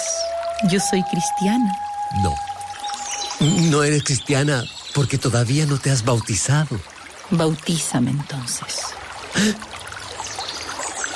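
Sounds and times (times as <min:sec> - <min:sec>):
water trickling in a stream: 0:00.0 - 0:11.1
speech: 0:00.6 - 0:02.5, 0:03.4 - 0:09.7.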